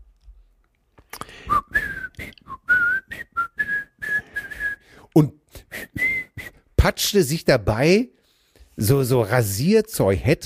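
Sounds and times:
person whistling a cheerful folk melody: 1.4s - 6.7s
speech: 5.2s - 5.9s, 6.8s - 8.2s, 8.8s - 10.4s.

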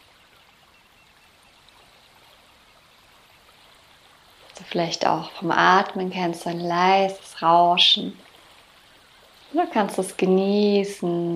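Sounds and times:
gentle sea waves washing: 0.0s - 11.3s
speech: 4.6s - 8.2s, 9.6s - 11.3s.

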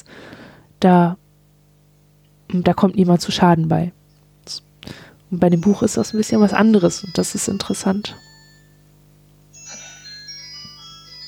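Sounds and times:
steady low hum: 0.0s - 11.2s
speech: 0.8s - 1.2s, 2.5s - 4.7s, 5.3s - 8.3s
mobile phone ringtone ringing with a bright electronic melody: 5.6s - 8.9s, 9.5s - 11.2s.

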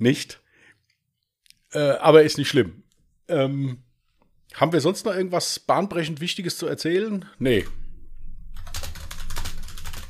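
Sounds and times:
speech: 0.0s - 0.4s, 1.7s - 3.8s, 4.5s - 7.8s
keyboard typing: 8.5s - 10.0s.

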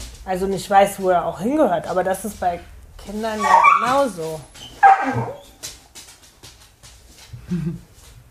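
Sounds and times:
speech: 0.2s - 5.5s, 7.5s - 7.9s
dog being trained barking, yipping and whimpering: 3.3s - 5.6s.

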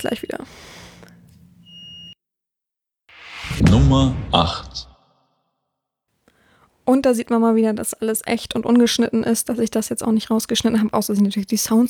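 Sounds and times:
speech: 0.0s - 0.8s, 3.7s - 4.9s, 6.9s - 11.8s
smoke detector high-pitched electronic beep: 1.6s - 2.2s
low hum: 3.1s - 5.0s.

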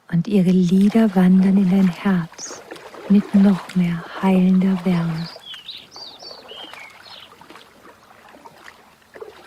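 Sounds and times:
water gently lapping: 0.0s - 9.4s
speech: 0.2s - 5.4s
birds singing and chirping: 3.2s - 7.5s.

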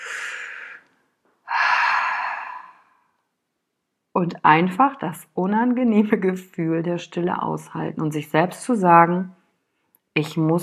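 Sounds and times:
deep inhale: 0.0s - 3.2s
speech: 4.2s - 9.4s, 10.2s - 10.6s.

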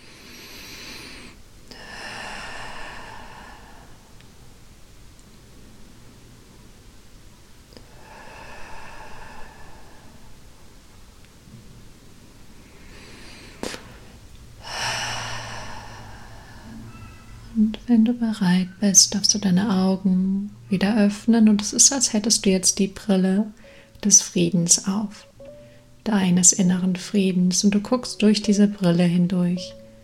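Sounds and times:
slow deep breathing in and out during a guided meditation: 0.0s - 4.7s, 7.7s - 10.9s, 12.5s - 17.5s, 23.6s - 24.0s
quiet hiss: 0.0s - 30.0s
speech: 17.6s - 25.3s, 26.0s - 29.8s.

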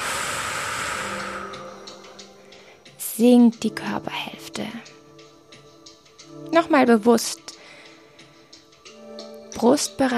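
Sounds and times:
deep long exhale during a guided breathing exercise: 0.0s - 1.9s
speech: 3.2s - 5.0s, 6.4s - 7.6s, 9.6s - 10.1s.

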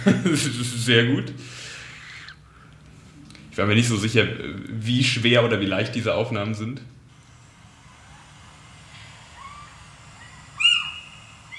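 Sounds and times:
speech: 0.0s - 1.7s, 3.6s - 7.0s
little owl calls: 9.3s - 11.5s.

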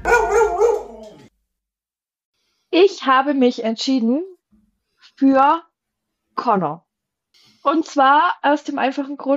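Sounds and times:
dog barking and yipping excitedly: 0.1s - 1.3s
speech: 3.0s - 4.4s, 5.2s - 5.7s, 6.4s - 6.8s, 7.6s - 9.3s.

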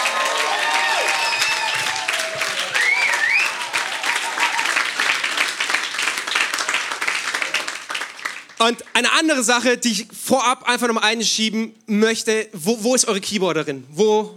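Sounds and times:
audience cheers and whoops: 0.0s - 5.4s
large audience applause: 0.0s - 8.9s
speech: 8.6s - 14.3s.

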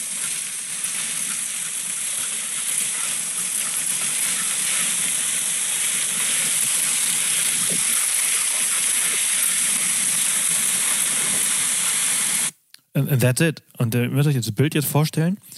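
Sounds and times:
dog sled runners hissing over a snowy frozen lake: 0.0s - 12.5s
speech: 13.0s - 15.5s.

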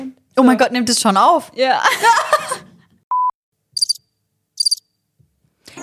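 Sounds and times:
speech: 0.4s - 2.4s
brief electronic beep: 3.1s - 4.8s
cricket chirping sound effect from soundboard: 3.7s - 4.9s.

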